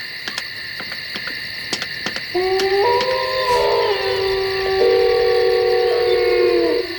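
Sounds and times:
wavering wolf-like howl: 1.6s - 6.9s
speech: 2.3s - 2.5s.

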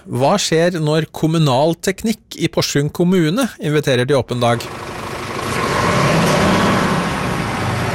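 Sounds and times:
speech: 0.0s - 4.9s
truck engine rumbling loudly: 4.2s - 7.9s.

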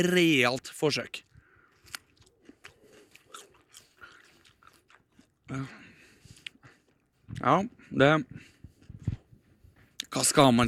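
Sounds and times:
speech: 0.0s - 1.3s, 5.5s - 5.8s, 7.4s - 8.5s, 10.1s - 10.6s
biting and chewing a grilled cucumber: 1.1s - 7.1s.

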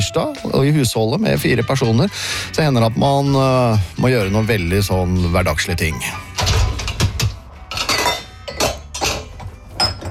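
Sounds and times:
speech: 0.0s - 6.3s
dishes and cutlery clinking as a dishwasher is unloaded: 6.2s - 10.0s.

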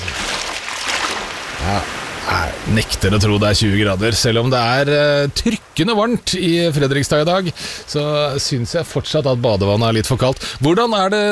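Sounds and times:
toe dipped into river water: 0.0s - 2.2s
river water rushing: 0.0s - 11.3s
speech: 1.7s - 11.3s.

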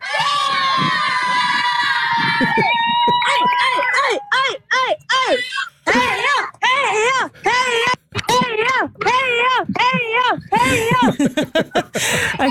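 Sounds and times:
small group cheering and shouting for passing runners: 0.0s - 11.3s
laughter: 0.1s - 4.3s, 5.1s - 6.6s, 9.4s - 12.4s.

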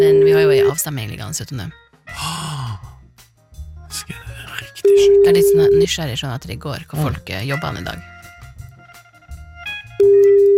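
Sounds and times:
speech: 0.0s - 2.6s, 4.9s - 8.1s
steady electronic telephone tone: 4.8s - 5.8s, 10.0s - 10.5s.

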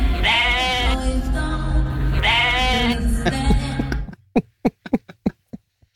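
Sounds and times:
overlapping sheep bleats: 0.2s - 1.0s, 2.1s - 3.0s
laughter: 2.9s - 5.7s.

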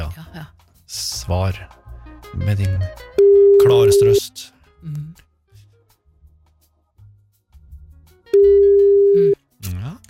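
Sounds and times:
speech: 0.9s - 5.2s
loud steady electronic telephone ringing tone: 3.2s - 4.2s, 8.4s - 9.4s.

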